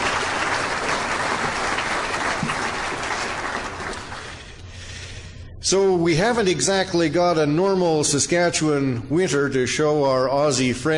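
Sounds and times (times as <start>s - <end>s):
crowd of many hands clapping: 0.0s - 4.5s
speech: 5.7s - 10.9s.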